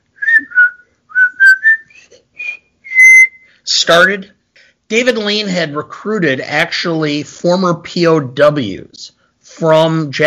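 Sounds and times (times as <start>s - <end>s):
whistled war film theme tune: 0.2s - 3.6s
speech: 3.9s - 10.2s.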